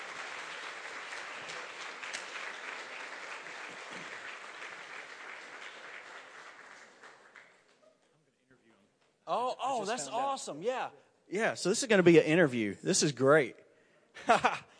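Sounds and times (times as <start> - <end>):
crowd applauding: 0.0 - 7.8
speech: 9.4 - 13.6, 14.2 - 14.6.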